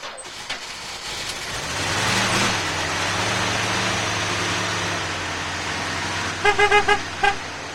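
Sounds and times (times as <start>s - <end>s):
old telephone company van engine starting and running: 0.0s - 7.7s
short van horn honks: 6.4s - 7.5s.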